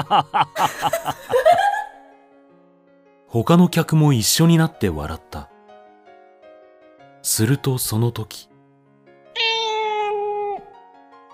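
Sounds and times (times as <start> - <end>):
speech: 0.0 - 1.5, 3.3 - 5.5, 7.2 - 8.5
laughter: 0.0 - 2.0
black cat meowing: 9.4 - 10.8.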